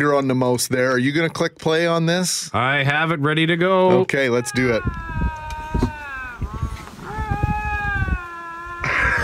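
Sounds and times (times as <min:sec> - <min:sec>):
speech: 0:00.0 - 0:05.2
two lynx yowling nose to nose: 0:04.2 - 0:09.2.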